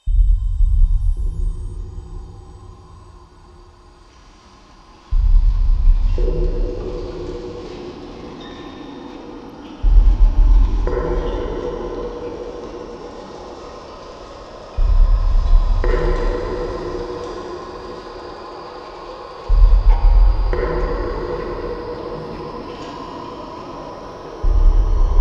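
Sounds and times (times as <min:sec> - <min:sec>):
dark ambient doom drones: 0:00.0 - 0:25.1.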